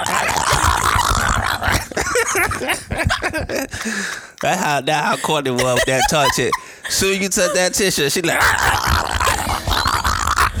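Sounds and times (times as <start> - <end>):
dog snarling and whining: 0.0 - 2.0, 8.4 - 10.5
dog growling: 0.0 - 2.6, 8.4 - 10.5
laughter: 0.0 - 10.5
speech: 2.6 - 9.0.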